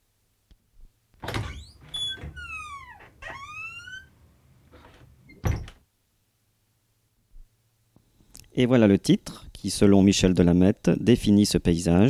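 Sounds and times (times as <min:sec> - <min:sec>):
door slamming shut with a heavy thud: 0:01.2 - 0:03.5, 0:05.4 - 0:05.8
door hinge creaking: 0:01.2 - 0:05.8
speech: 0:08.6 - 0:12.0.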